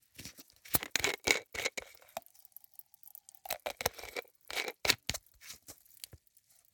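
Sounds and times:
screw cap of a plastic bottle turning: 0.7s - 2.4s, 3.4s - 6.2s.

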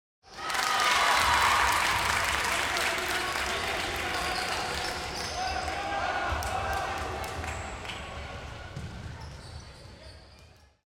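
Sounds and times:
light applause at a basketball game: 0.3s - 8.5s
crowd cheering at a basketball game: 0.3s - 8.8s.

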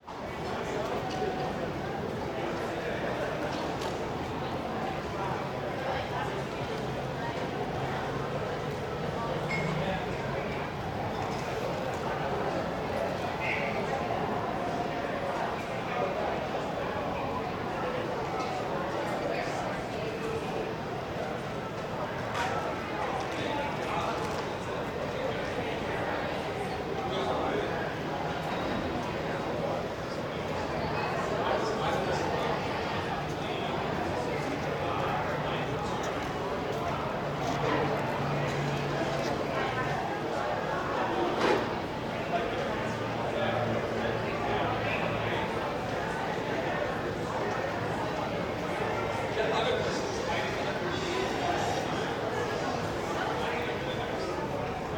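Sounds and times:
crowd voices at a restaurant exterior: 0.0s - 54.9s.

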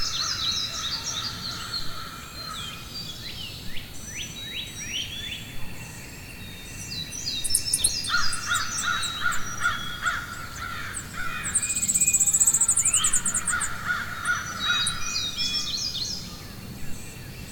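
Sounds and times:
small birds twittering and chirping: 0.0s - 17.5s
crow cawing: 8.0s - 11.9s, 12.6s - 15.1s.

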